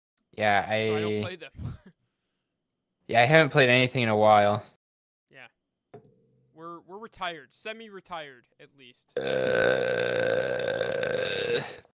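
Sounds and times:
speech: 0.4s - 1.7s, 3.1s - 4.7s, 6.6s - 11.9s
loud burp: 9.2s - 11.9s.

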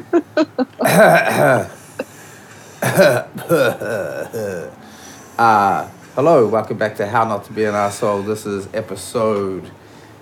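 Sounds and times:
speech: 0.1s - 1.8s, 3.0s - 4.7s, 5.4s - 9.8s
throat clearing: 0.8s - 1.9s, 2.8s - 4.8s
person coughing: 0.8s - 2.2s, 2.8s - 4.7s.

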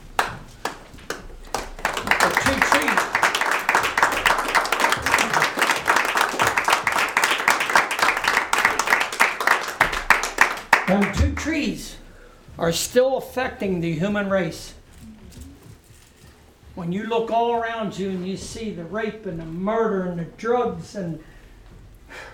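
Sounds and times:
standing audience applauding in a church: 0.0s - 11.6s
speech: 12.6s - 14.8s, 16.9s - 21.3s.

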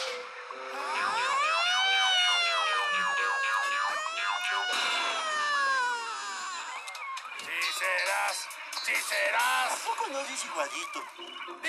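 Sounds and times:
voice imitating a police patrol car siren wailing: 0.6s - 7.8s
speech: 8.3s - 11.6s.

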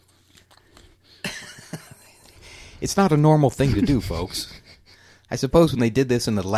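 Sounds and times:
wet chewing of food with soft crunchy bites: 0.0s - 1.2s
speech: 2.8s - 4.6s, 5.3s - 6.5s.

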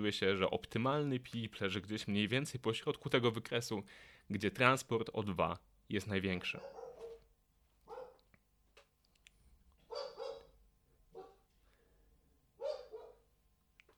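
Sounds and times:
speech: 0.0s - 6.8s
dog barking: 6.5s - 7.3s, 7.9s - 8.3s, 9.9s - 11.5s, 12.6s - 13.3s.

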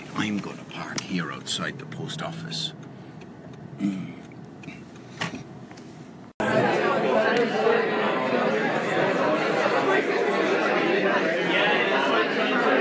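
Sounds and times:
speech: 0.2s - 2.8s, 3.8s - 4.2s
crowded room chatter at a conference: 6.4s - 12.7s.

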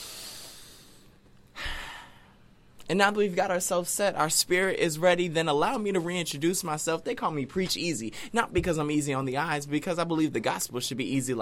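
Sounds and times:
slow deep breath in: 0.0s - 2.4s
speech: 2.9s - 11.4s.

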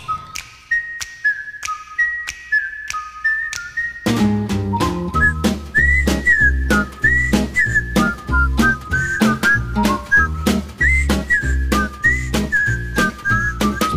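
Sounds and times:
bright whistled TV theme tune: 0.0s - 13.9s
full band with steady bass and drum beat: 4.1s - 13.9s.

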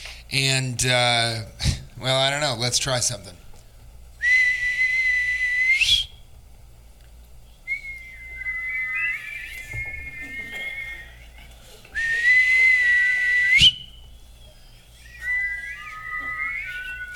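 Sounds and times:
speech: 0.3s - 3.4s
person whistling a loud steady held note: 4.2s - 6.2s, 7.7s - 11.2s, 12.0s - 14.0s, 14.9s - 17.1s
softer warbling whistled melodic phrase: 7.6s - 11.4s, 12.0s - 17.1s
laughter: 9.8s - 13.4s, 15.2s - 17.1s.

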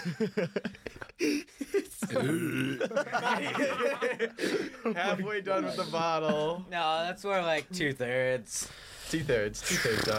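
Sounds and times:
people chuckling: 0.0s - 6.6s
speech: 0.0s - 10.1s
long low rumbling burp: 2.2s - 2.8s.

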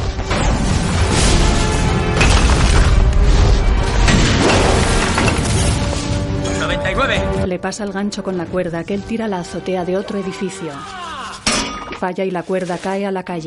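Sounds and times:
explosions booming on a rooftop: 0.0s - 6.4s
debris shattering: 0.1s - 6.4s
speech: 7.0s - 11.0s, 12.0s - 13.4s.

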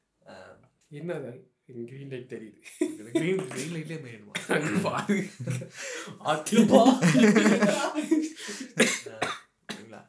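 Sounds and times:
speech: 0.9s - 9.2s
laughter: 2.7s - 9.1s
person coughing: 4.4s - 5.1s, 6.5s - 9.9s.

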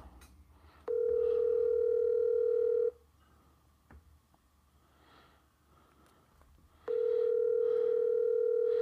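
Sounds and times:
person breathing: 0.5s - 1.8s, 4.7s - 8.8s
telephone ringing on the line with long electronic tones: 0.9s - 3.0s, 6.9s - 8.8s.

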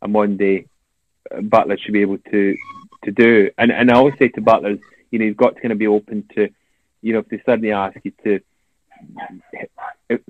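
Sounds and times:
speech: 0.1s - 10.2s
dog barking: 9.0s - 10.0s.

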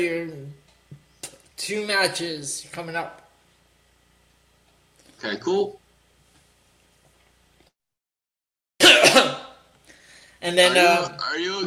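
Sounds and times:
speech: 0.0s - 0.6s, 1.6s - 3.2s, 5.2s - 5.8s, 10.4s - 11.6s
person coughing harshly: 8.8s - 9.6s.

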